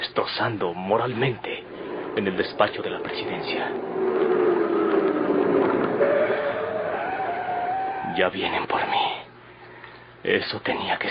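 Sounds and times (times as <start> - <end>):
speech: 0.2 - 1.6, 2.2 - 4.3, 8.2 - 9.2, 10.2 - 11.0
car engine rumbling as it pulls up outside: 0.8 - 8.3.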